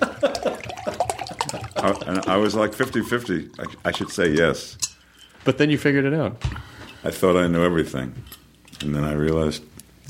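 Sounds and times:
water sloshing and gurgling inside a plastic water bottle: 0.3 - 4.6
speech: 1.8 - 10.0.

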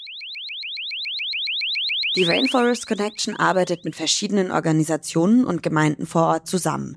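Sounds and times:
electronic alarm signal of rising chirps: 0.0 - 4.1
speech: 2.1 - 6.9.

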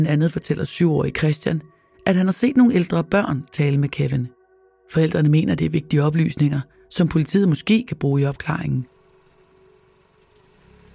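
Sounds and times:
speech: 0.0 - 8.9
car engine starting and idling: 8.9 - 10.9.

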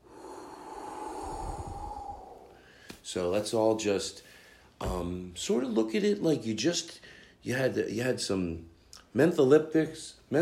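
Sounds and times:
deep breath in and exhale as a breathing demonstration: 0.0 - 3.0
speech: 3.1 - 10.3.

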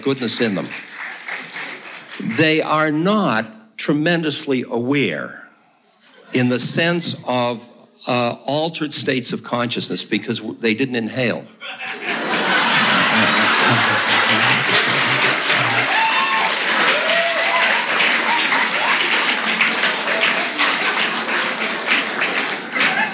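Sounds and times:
speech: 0.0 - 0.9, 2.2 - 5.4, 6.3 - 11.8
audience clapping from the back of the crowd: 0.0 - 2.6, 11.9 - 23.1
murmuring audience voices: 11.6 - 23.1
scattered audience laughter: 11.9 - 15.9, 22.7 - 23.1.

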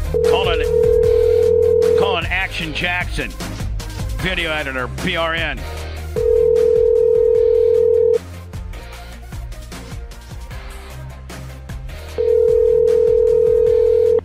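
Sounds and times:
quiet music: 0.1 - 8.3, 12.0 - 14.2
telephone ringback tone: 0.2 - 2.2, 6.2 - 8.2, 12.2 - 14.2
speech: 2.6 - 3.5, 4.2 - 5.8.

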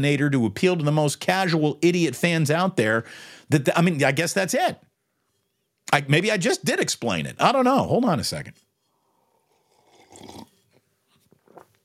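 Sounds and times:
speech: 0.0 - 4.9, 5.9 - 8.6
person sipping hot coffee made in a French press: 8.9 - 10.8.

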